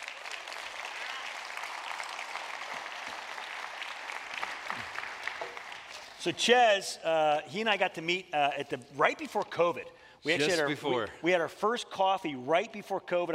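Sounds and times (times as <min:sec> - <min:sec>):
audience applause: 0:00.0 - 0:06.3
speech: 0:06.2 - 0:13.3.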